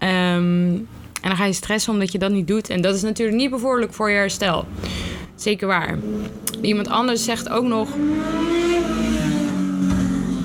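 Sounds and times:
speech: 0:01.4 - 0:08.7
motorcycle engine revving as it passes: 0:05.8 - 0:10.4.

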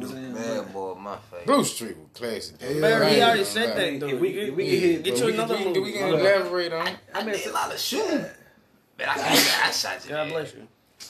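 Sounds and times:
speech: 0:01.0 - 0:08.4, 0:09.0 - 0:11.0
person sneezing: 0:09.2 - 0:09.8.

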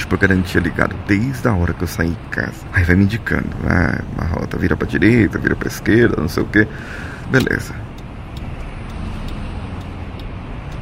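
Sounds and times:
car moving along the Marginal Tietê highway in São Paulo at 90 km/h: 0:00.0 - 0:10.8
speech: 0:00.1 - 0:07.9
faint ticking: 0:03.5 - 0:10.8.

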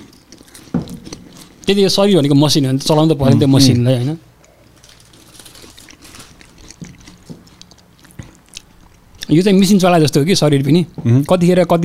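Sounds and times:
person crunching and chewing a snack: 0:00.0 - 0:02.2, 0:04.3 - 0:09.4
speech: 0:01.7 - 0:04.3, 0:09.3 - 0:11.8.

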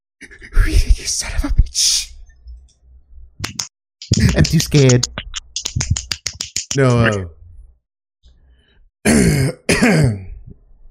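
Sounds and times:
speech: 0:01.0 - 0:02.1, 0:04.5 - 0:05.2, 0:06.8 - 0:07.4, 0:09.0 - 0:10.2
person coughing: 0:09.1 - 0:10.4.

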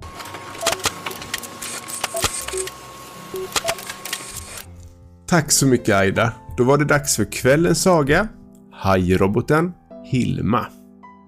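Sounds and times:
printer paper feed noise: 0:00.0 - 0:04.7
printer printing out a story: 0:00.0 - 0:04.7
printer short whirring tones: 0:00.1 - 0:04.7
printer mechanical clicks: 0:00.6 - 0:02.8, 0:03.4 - 0:04.7
speech: 0:05.3 - 0:10.8.

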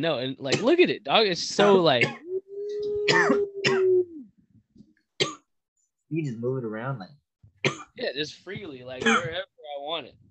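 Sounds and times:
speech: 0:00.0 - 0:03.8, 0:06.1 - 0:10.2
person coughing: 0:03.0 - 0:04.0, 0:09.0 - 0:09.4.

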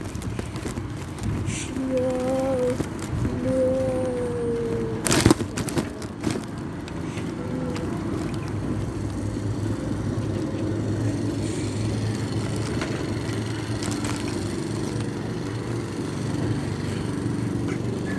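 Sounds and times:
lawn mower engine running outdoors: 0:00.0 - 0:18.1.

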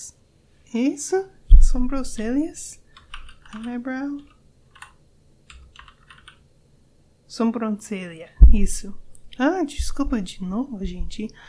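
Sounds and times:
speech: 0:00.7 - 0:02.8, 0:03.5 - 0:04.3, 0:07.3 - 0:11.4
microphone being bumped: 0:01.5 - 0:02.4, 0:08.4 - 0:09.0, 0:09.8 - 0:11.2.

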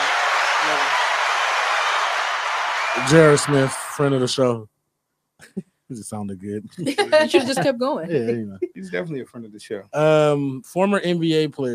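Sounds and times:
round of applause from many hands: 0:00.0 - 0:04.6
laughter: 0:03.0 - 0:04.6, 0:05.4 - 0:11.7
speech: 0:03.0 - 0:04.7, 0:05.4 - 0:11.7.

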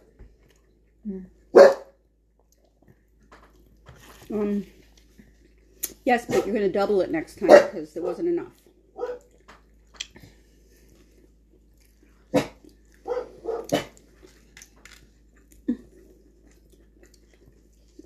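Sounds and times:
speech: 0:01.0 - 0:01.4, 0:04.3 - 0:04.8, 0:06.1 - 0:08.6
dog barking: 0:01.5 - 0:02.0, 0:06.3 - 0:06.5, 0:07.5 - 0:08.2, 0:09.0 - 0:09.4, 0:12.3 - 0:14.0.

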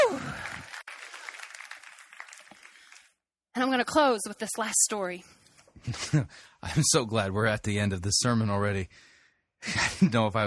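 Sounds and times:
audience clapping: 0:00.0 - 0:03.2
speech: 0:03.6 - 0:10.4.

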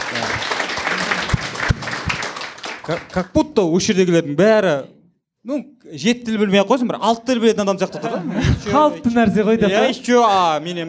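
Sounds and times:
sharp individual claps: 0:00.0 - 0:03.3
applause: 0:00.0 - 0:03.5
speech: 0:02.9 - 0:10.8
laughter: 0:07.8 - 0:10.0, 0:10.6 - 0:10.8.

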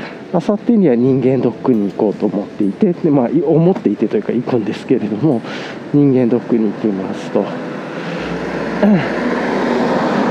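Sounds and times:
dense traffic roar passing outside: 0:00.0 - 0:10.2
speech: 0:00.3 - 0:07.8, 0:08.8 - 0:09.3
rising and falling whine: 0:07.0 - 0:10.2.

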